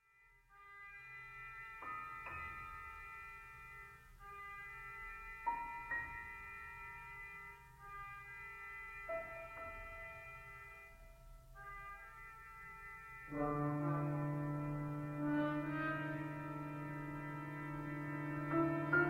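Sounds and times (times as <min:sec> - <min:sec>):
piano and brass quintet playing a largo: 0:00.5 - 0:19.0.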